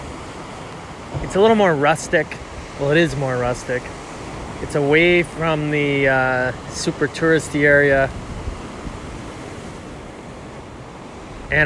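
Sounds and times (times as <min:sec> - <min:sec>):
ocean surf breaking on a shore: 0:00.0 - 0:11.6
wind rumble: 0:00.0 - 0:11.6
speech: 0:01.2 - 0:04.0, 0:04.6 - 0:08.2.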